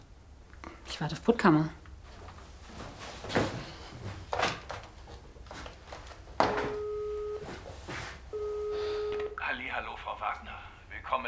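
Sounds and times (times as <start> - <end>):
speech: 1.0 - 1.8
soft clunks and rustling: 2.0 - 8.2
telephone ringing tone during outgoing call heard through a handset: 6.5 - 7.6, 8.3 - 9.4.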